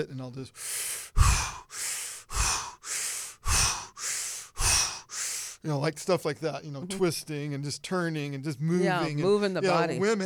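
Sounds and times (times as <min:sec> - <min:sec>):
speech: 0:00.0 - 0:01.4, 0:05.6 - 0:10.2
forceful rhythmic yoga breathing: 0:00.5 - 0:05.7.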